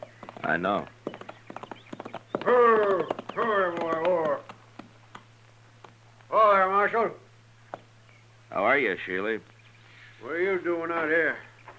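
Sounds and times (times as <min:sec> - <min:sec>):
horse hooves clopping: 0:00.0 - 0:06.3
speech: 0:00.5 - 0:01.0, 0:02.5 - 0:03.8, 0:06.4 - 0:07.2, 0:08.6 - 0:09.6, 0:10.2 - 0:11.5
loud drawn-out horse whinny: 0:02.4 - 0:04.5.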